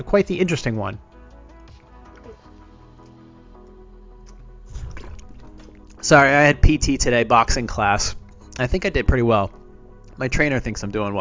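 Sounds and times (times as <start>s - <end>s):
speech: 0.0s - 1.1s, 6.1s - 9.6s, 10.2s - 11.1s
low steady hum: 3.6s - 11.1s
person sipping water: 4.3s - 6.0s.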